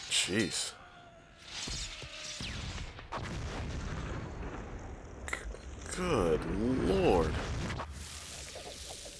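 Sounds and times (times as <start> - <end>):
speech: 0.2 - 0.8, 6.0 - 7.4
huge booming explosion: 2.4 - 7.9.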